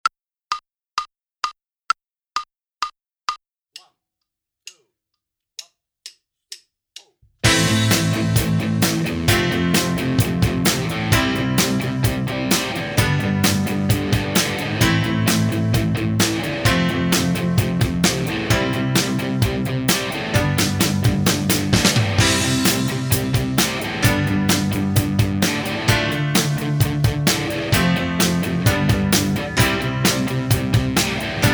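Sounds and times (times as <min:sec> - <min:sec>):
bass: 0:07.4 - 0:31.5.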